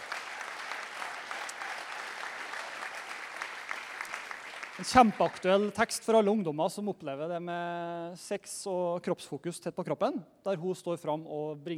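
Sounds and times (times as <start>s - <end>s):
audience applause: 0.0s - 5.8s
speech: 4.8s - 11.7s.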